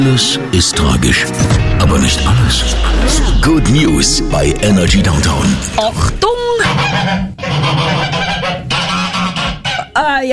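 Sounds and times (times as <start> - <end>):
speech: 0.0 - 8.0, 10.0 - 10.3
flock of geese cackling and honking: 6.6 - 10.2.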